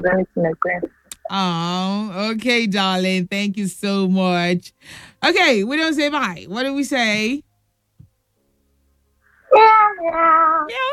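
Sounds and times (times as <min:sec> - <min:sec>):
speech: 0:00.0 - 0:07.5, 0:09.5 - 0:10.9
person imitating cat meows: 0:09.5 - 0:10.9.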